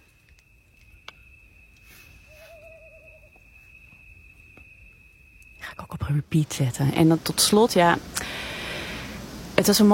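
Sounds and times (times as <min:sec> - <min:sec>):
steady high-pitched whine: 0:00.0 - 0:09.9
owl hooting: 0:01.1 - 0:05.3
speech: 0:06.1 - 0:08.4, 0:09.6 - 0:09.9.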